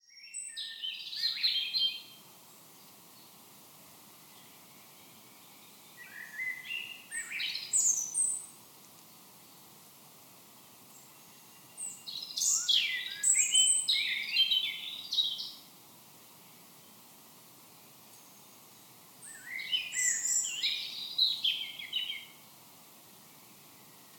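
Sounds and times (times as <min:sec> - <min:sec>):
birds: 0:00.0 - 0:09.7, 0:10.6 - 0:15.7, 0:17.8 - 0:24.1
wind: 0:00.0 - 0:24.1.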